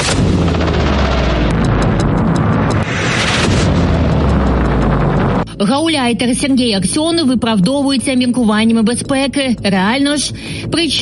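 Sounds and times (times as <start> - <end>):
explosions rumbling: 0.0 - 5.6
speech: 5.6 - 11.0.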